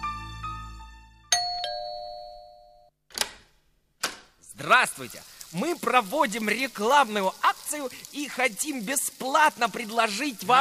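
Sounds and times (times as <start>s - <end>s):
doorbell two-note ding-dong: 1.3s - 2.9s
speech: 4.6s - 10.5s.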